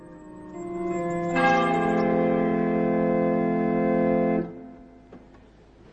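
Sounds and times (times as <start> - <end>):
church bell ringing: 0.6 - 4.5.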